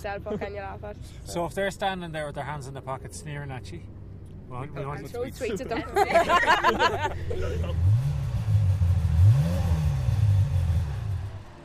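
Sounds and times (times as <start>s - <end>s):
speech: 0.0s - 8.2s
laughter: 5.4s - 7.9s
Ferrari 355 sports car engine revving: 7.0s - 11.6s.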